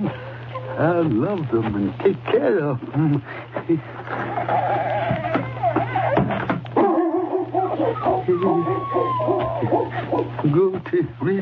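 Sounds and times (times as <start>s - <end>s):
low constant hum: 0.0s - 11.4s
speech: 0.8s - 4.8s, 8.2s - 11.4s
dog whimpering and whining: 4.2s - 10.4s
dog barking: 6.8s - 10.3s.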